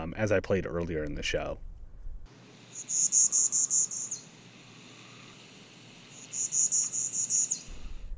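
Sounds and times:
speech: 0.1 - 1.7, 2.8 - 3.6
steady hiss of insects: 2.3 - 8.1
pine warbler singing rapid trills: 2.6 - 7.9.

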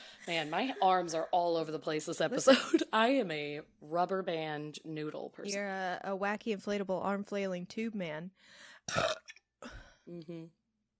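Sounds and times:
speech: 0.2 - 10.6
loud gurgling burp: 8.9 - 9.4.

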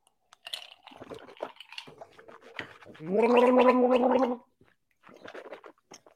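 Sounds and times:
person swishing ice water in mouth during a whiskey tasting: 0.9 - 6.1
gargling ice water: 3.0 - 4.5.

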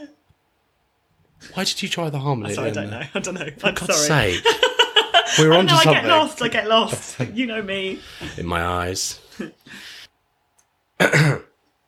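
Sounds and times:
speech: 1.4 - 4.7, 5.3 - 9.9, 11.0 - 11.4
laughter: 2.4 - 8.6
raspy throat clearing: 11.0 - 11.6.

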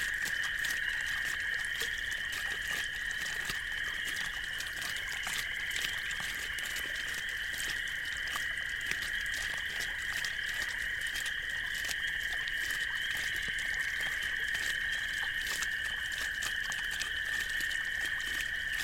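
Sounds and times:
artesian well water bubbling and gurgling at night: 0.0 - 18.8.

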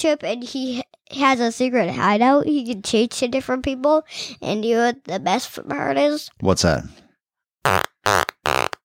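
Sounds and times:
speech: 0.0 - 7.0, 7.6 - 8.3
fart noises from a frog character in a video game: 7.7 - 8.8.

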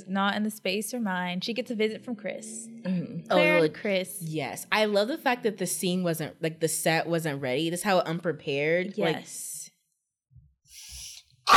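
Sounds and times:
speech: 0.0 - 9.5
sneeze: 10.9 - 11.5.

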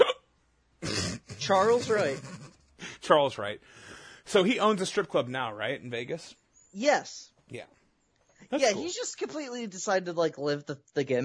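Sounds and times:
hiccups: 0.0 - 2.6
speech: 1.5 - 2.3, 3.1 - 7.8, 8.5 - 11.2.

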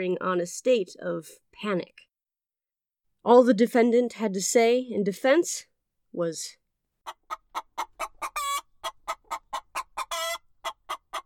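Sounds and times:
speech: 0.0 - 2.1, 3.2 - 7.2
rooster crowing and clucking: 7.3 - 11.2.

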